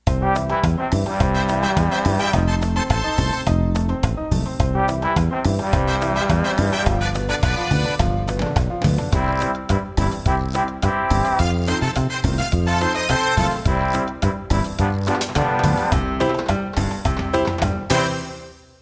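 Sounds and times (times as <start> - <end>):
cumbia music: 0.0 - 18.8.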